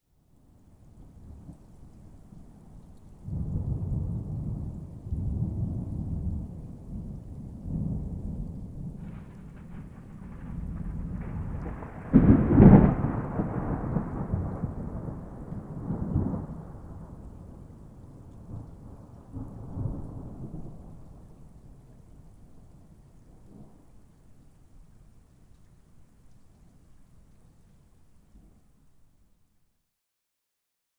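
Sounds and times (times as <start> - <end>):
distant violent thunderstorm outdoors: 3.2 - 21.4.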